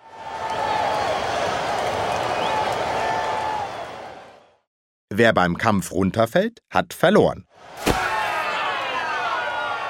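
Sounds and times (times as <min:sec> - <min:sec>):
people clapping: 0:00.0 - 0:04.2
spectators cheering at a jousting tournament: 0:00.0 - 0:04.7, 0:07.6 - 0:09.8
speech: 0:05.2 - 0:08.0
people shouting: 0:07.8 - 0:09.8.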